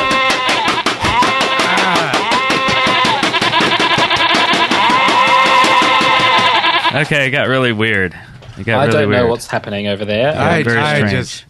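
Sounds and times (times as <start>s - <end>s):
dense rapid clicking rhythm: 0.0s - 7.0s
sheep bleating: 0.0s - 7.1s
speech: 7.0s - 11.4s.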